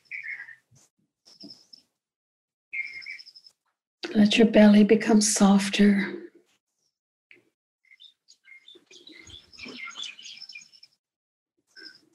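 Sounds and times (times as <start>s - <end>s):
several birds twittering and chirping at sunrise: 0.0s - 1.9s, 2.8s - 3.6s, 7.3s - 11.0s, 11.7s - 12.1s
speech: 4.1s - 6.2s.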